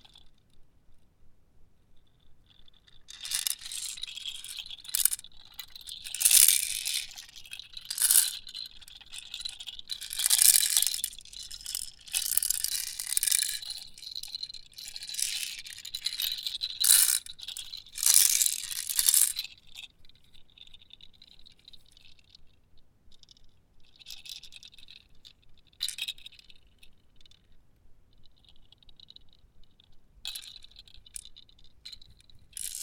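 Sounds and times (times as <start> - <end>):
baby rattle: 3.1 - 5.2, 5.9 - 8.5, 9.2 - 14.3, 14.8 - 19.4, 32.5 - 32.8.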